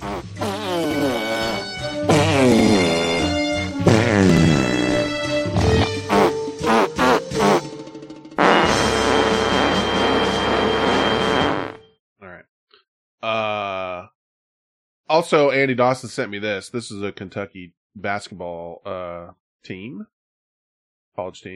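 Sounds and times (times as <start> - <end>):
man with one arm farting: 0.0 - 7.7, 8.4 - 11.8
speech: 15.3 - 20.1, 21.2 - 21.5.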